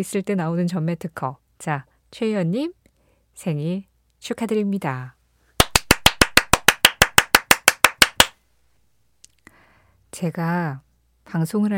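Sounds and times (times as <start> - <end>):
speech: 0.0 - 2.8, 3.4 - 5.2, 10.2 - 11.7
fast enthusiastic hand clapping: 5.6 - 8.4.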